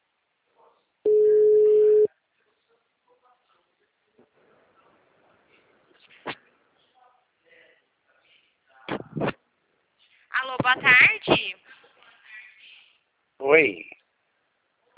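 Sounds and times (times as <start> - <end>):
telephone ringing tone during an outgoing call: 1.1 - 2.1
speech: 10.7 - 11.4, 13.6 - 13.9.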